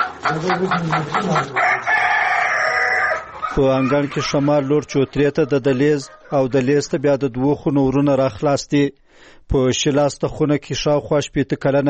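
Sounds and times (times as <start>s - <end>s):
rooster crowing in a courtyard: 0.0s - 6.4s
hens and roosters clucking among leaves and litter in a courtyard: 0.0s - 8.0s
speech: 0.3s - 1.9s, 3.6s - 11.8s.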